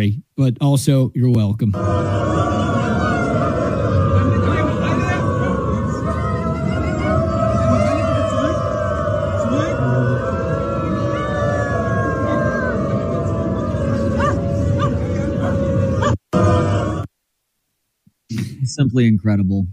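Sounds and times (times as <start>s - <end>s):
speech: 0.0s - 3.0s, 18.8s - 19.7s
crowd of people in dog masks howling like dogs at a railroad station: 1.8s - 17.1s.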